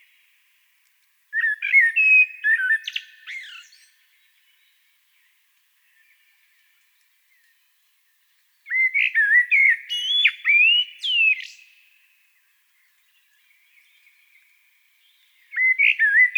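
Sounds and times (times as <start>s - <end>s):
common blackbird song phrase: 1.4s - 16.3s.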